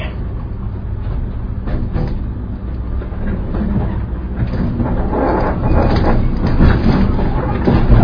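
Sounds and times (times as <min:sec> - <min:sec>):
train rolling on rails with rhythmic clatter: 0:00.0 - 0:08.0.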